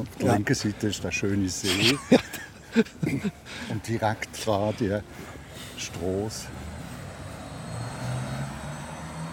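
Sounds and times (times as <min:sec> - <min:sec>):
speech: 0:00.0 - 0:06.6
laughter: 0:01.6 - 0:05.0
electric bus motor humming past with a faint high whine: 0:05.5 - 0:09.3.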